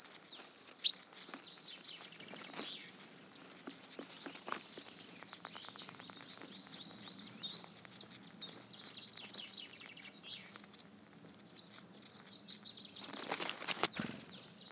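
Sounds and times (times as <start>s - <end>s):
Eurasian Blue Tit Cyanistes caeruleus twittering calls: 0.0s - 14.6s
scuffling noise: 2.2s - 5.0s.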